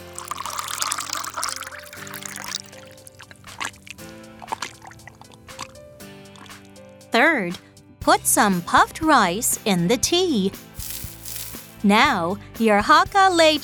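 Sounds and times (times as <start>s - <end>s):
clinks and swishes of stirring: 0.0s - 3.8s, 10.8s - 11.9s
hot water pouring into a bowl: 0.0s - 5.3s, 10.8s - 11.9s
gentle music: 0.0s - 13.6s
speech: 7.1s - 10.6s, 11.8s - 13.6s.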